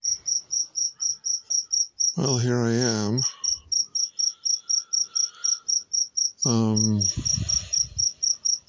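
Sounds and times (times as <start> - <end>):
cricket chirping indoors at night: 0.0 - 8.6
speech: 2.2 - 3.4, 6.4 - 7.7.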